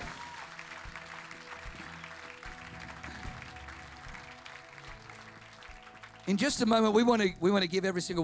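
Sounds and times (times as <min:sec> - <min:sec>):
crowd applause: 0:00.0 - 0:07.1
speech: 0:06.3 - 0:08.2.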